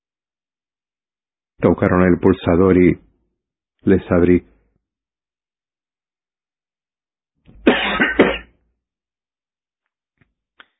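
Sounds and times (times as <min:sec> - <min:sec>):
speech: 0:01.6 - 0:03.1, 0:03.8 - 0:04.5
person coughing after coming in from the cold: 0:07.6 - 0:08.6.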